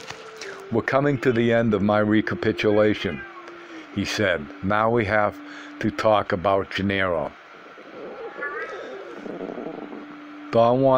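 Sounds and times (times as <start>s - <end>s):
steady hiss: 0.0s - 10.9s
speech: 0.7s - 3.3s, 4.0s - 7.4s, 10.5s - 10.9s
low voice talking: 0.7s - 7.4s
cat yowling: 2.7s - 3.6s, 7.9s - 10.1s.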